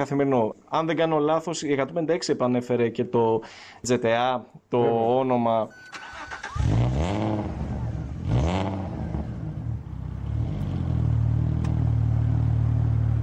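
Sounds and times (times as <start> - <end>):
speech: 0.0 - 6.0
V6 car engine revving: 6.1 - 13.2
V6 car engine in a loud roaring idle: 7.2 - 13.2.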